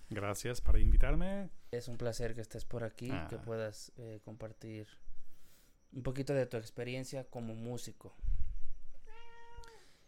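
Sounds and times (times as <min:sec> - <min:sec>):
speech: 0:00.1 - 0:05.1, 0:05.9 - 0:08.4
cat meowing: 0:08.9 - 0:09.8.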